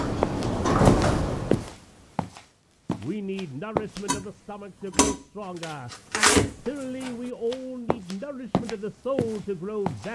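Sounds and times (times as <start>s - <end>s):
door sliding or swinging open with a low rumbling rush: 0.0s - 1.7s
speech: 3.1s - 10.1s.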